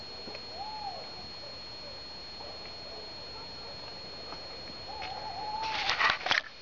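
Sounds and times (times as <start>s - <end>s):
Tawny Owl hooting: 0.0s - 6.2s.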